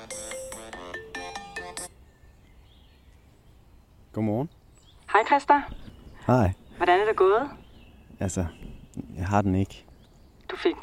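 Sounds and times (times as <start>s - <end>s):
phone ringtone playing a bright melodic electronic tune: 0.0s - 2.0s
speech: 4.2s - 4.6s, 5.2s - 7.6s, 8.2s - 9.9s, 10.6s - 10.8s.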